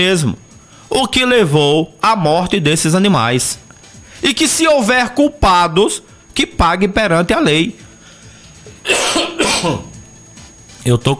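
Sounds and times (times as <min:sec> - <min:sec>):
speech: 0:00.0 - 0:03.6, 0:04.2 - 0:07.8, 0:08.8 - 0:09.9, 0:10.8 - 0:11.1
low hiss: 0:00.0 - 0:11.1
harsh coughs from an irritated itchy throat: 0:08.8 - 0:10.0.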